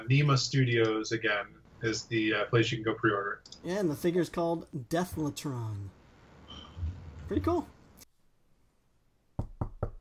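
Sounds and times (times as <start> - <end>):
speech: 0.1 - 6.0, 7.3 - 7.8
firm knocks on a door: 9.4 - 10.0.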